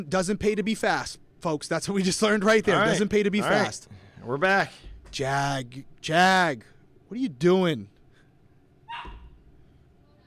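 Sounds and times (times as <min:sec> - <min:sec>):
speech: 0:00.0 - 0:07.9
dog barking: 0:08.9 - 0:09.4.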